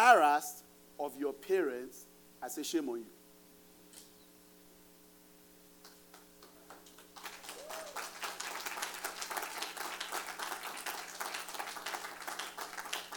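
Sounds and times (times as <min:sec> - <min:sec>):
constant low electrical hum: 0:00.0 - 0:13.1
speech: 0:00.1 - 0:03.2
audience clapping: 0:05.8 - 0:13.1.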